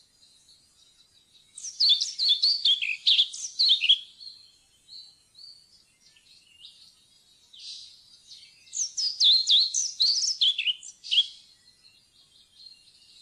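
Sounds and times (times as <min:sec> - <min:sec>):
European pied flycatcher singing: 0:00.0 - 0:13.1.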